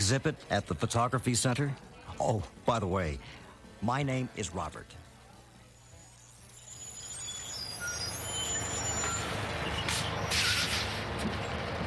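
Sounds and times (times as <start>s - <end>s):
speech: 0.1s - 5.0s
bus pulling up with low engine rumble: 7.6s - 11.8s
short bursts of bus hissing air release: 8.7s - 11.1s.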